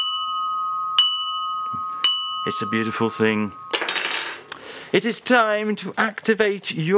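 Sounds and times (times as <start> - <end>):
china mug ringing with a bell-like tone: 0.0 - 4.5
speech: 2.4 - 3.6, 4.9 - 6.9.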